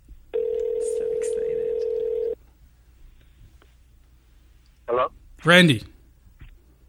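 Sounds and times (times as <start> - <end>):
phone ringback tone: 0.4 - 2.4
speech: 5.4 - 5.9.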